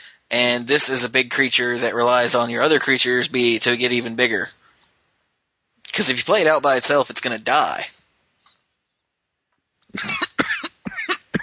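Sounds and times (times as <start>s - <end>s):
speech: 0.3s - 4.6s, 6.0s - 7.9s, 9.9s - 10.2s
person coughing in a harsh rapid fit: 10.0s - 11.4s.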